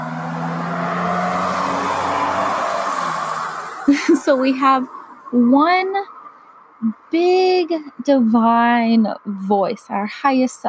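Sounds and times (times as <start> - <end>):
car driving by outside: 0.0 - 6.8
speech: 3.9 - 6.2, 6.8 - 10.6.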